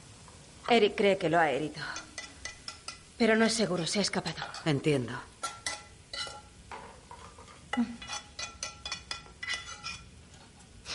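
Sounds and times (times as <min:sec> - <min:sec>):
speech: 0:00.7 - 0:02.1, 0:03.2 - 0:05.3, 0:07.8 - 0:08.1
utensils clinking and scraping on cookware while cooking lutefisk in a pan: 0:01.9 - 0:04.8, 0:05.4 - 0:10.1.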